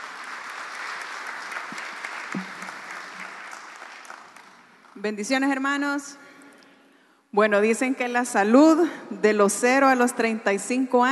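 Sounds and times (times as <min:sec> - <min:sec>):
audience applause: 0:00.0 - 0:05.0
speech: 0:05.0 - 0:06.2, 0:07.3 - 0:11.1.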